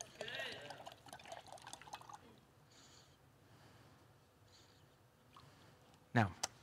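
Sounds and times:
gallon of water pouring into a jar: 0.0s - 2.4s
speech: 6.2s - 6.4s.

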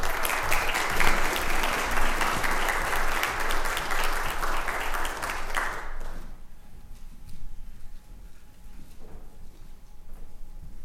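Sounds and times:
large audience applauding to welcome guests: 0.0s - 6.4s.

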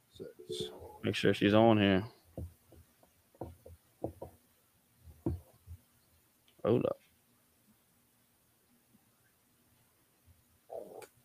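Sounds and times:
low hiss: 0.0s - 11.2s
speech: 0.2s - 2.2s, 6.7s - 7.0s
stomach growling: 10.7s - 11.2s.

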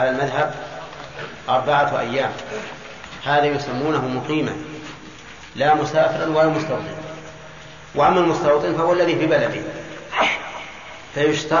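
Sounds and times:
speech: 0.0s - 4.8s, 5.6s - 7.1s, 7.9s - 10.4s, 11.1s - 11.5s
faint hum: 0.0s - 11.5s
sneeze: 10.1s - 10.9s.

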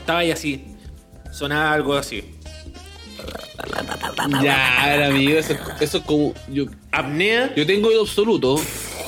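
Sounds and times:
speech: 0.1s - 0.7s, 1.3s - 2.4s, 3.2s - 8.8s
man imitating a friend's heavy snoring with his voice: 3.2s - 6.0s.

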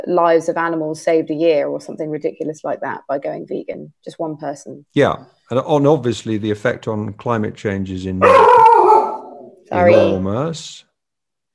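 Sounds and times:
speech: 0.0s - 8.7s, 9.7s - 10.9s
dog giving whining howl-like cries: 8.2s - 10.3s.

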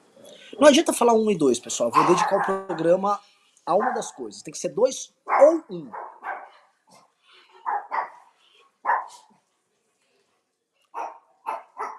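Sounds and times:
speech: 0.6s - 6.1s
several dogs barking loudly: 1.9s - 3.0s, 3.7s - 4.3s, 5.2s - 6.7s, 7.6s - 9.3s, 10.9s - 11.9s.

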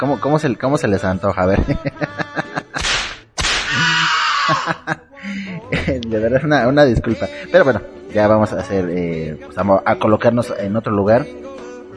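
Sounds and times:
speech: 0.0s - 2.9s, 4.7s - 11.6s
people laughing rhythmically: 1.5s - 3.0s, 3.7s - 6.1s
whip lashes cracking: 2.8s - 3.8s.

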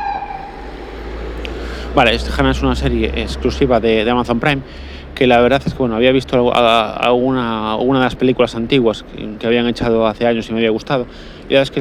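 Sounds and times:
passing ambulance siren wailing: 0.0s - 7.8s
loud constant traffic rumble: 0.0s - 11.8s
speech: 2.0s - 11.8s.

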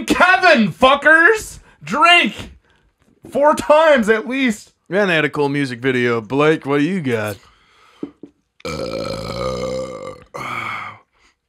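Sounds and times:
speech: 0.0s - 2.6s, 3.2s - 7.5s
burping: 8.6s - 11.0s.

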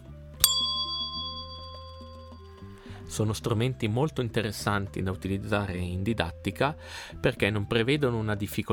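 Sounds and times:
small colorful push-button bell ding: 0.4s - 2.7s
speech: 3.1s - 8.7s.

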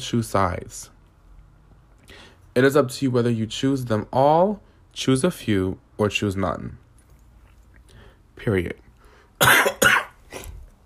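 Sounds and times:
speech: 0.0s - 0.9s, 2.1s - 6.8s, 8.4s - 8.8s, 9.4s - 9.7s
person coughing: 9.4s - 10.6s.

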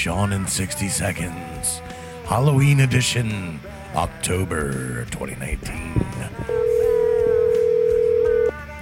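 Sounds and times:
speech: 0.0s - 6.6s
steady continuous phone tone: 6.3s - 8.6s
telephone being dialed: 6.5s - 8.5s.

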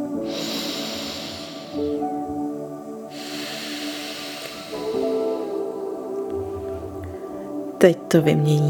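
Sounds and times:
slow breathing through one nostril with the other pressed shut by a finger: 0.2s - 2.2s, 3.1s - 5.8s
speech: 7.8s - 8.6s.

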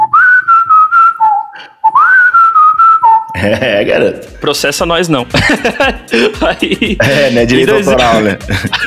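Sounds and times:
whistled melody from a pop song: 0.0s - 3.4s
speech: 3.4s - 8.8s
laughter: 5.3s - 8.8s.

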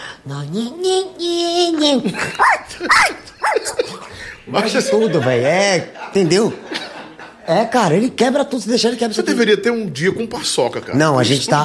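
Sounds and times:
speech: 0.2s - 3.8s, 4.5s - 6.7s, 7.5s - 11.6s
laughter: 2.0s - 7.8s
dog barking sharply: 2.4s - 3.8s.

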